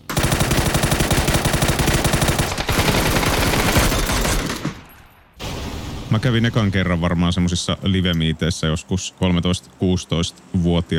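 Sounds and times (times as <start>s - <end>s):
rapid automatic gunfire from a video game: 0.0s - 4.9s
speech: 6.1s - 10.9s.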